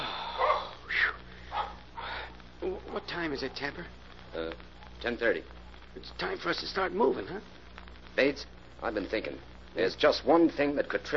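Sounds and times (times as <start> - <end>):
low steady hum: 0.0 - 11.1
dog running and barking toward a freight yard: 0.4 - 0.8, 1.5 - 1.8
speech: 3.2 - 7.6, 8.2 - 11.1.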